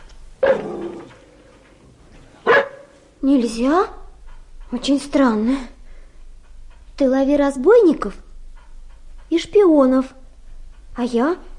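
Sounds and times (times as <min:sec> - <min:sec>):
dog barking loudly: 0:00.4 - 0:01.0, 0:02.4 - 0:03.0
speech: 0:03.2 - 0:04.0, 0:04.7 - 0:05.8, 0:07.0 - 0:08.2, 0:09.4 - 0:10.2, 0:11.0 - 0:11.5.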